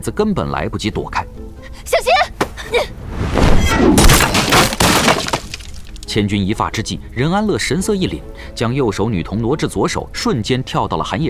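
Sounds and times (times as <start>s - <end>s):
speech: 0.0s - 2.1s, 6.1s - 11.2s
splintering bursts of breaking debris: 3.3s - 6.1s
burning wooden house collapsing: 3.4s - 6.2s
roof beams cracking and tumbling down: 4.0s - 6.1s.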